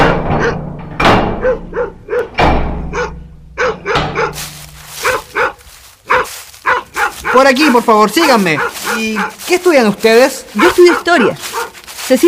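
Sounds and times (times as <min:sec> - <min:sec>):
door-like slam: 0:00.0 - 0:03.1, 0:03.7 - 0:04.5
thumps: 0:00.0 - 0:05.6
dog barking: 0:00.3 - 0:00.6, 0:01.3 - 0:09.5, 0:10.4 - 0:11.9
speech: 0:07.3 - 0:12.2.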